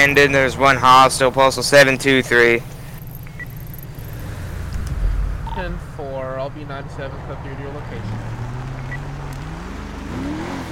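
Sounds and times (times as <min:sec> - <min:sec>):
speech: 0:00.0 - 0:02.8, 0:05.6 - 0:08.4
car engine accelerating as a vehicle drives off in a police video game: 0:03.7 - 0:10.7.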